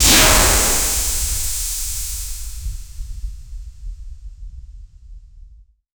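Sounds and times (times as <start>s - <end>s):
powerful energy beam impact: 0.0s - 2.6s.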